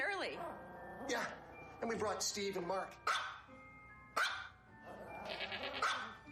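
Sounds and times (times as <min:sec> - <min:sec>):
speech: 0:00.2 - 0:03.1
goats bleating in a goat yoga video: 0:05.2 - 0:05.9.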